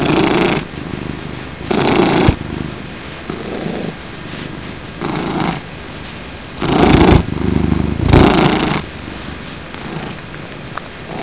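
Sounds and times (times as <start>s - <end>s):
cat purring: 0.0s - 5.7s, 6.6s - 8.9s, 9.7s - 10.2s, 11.0s - 11.2s.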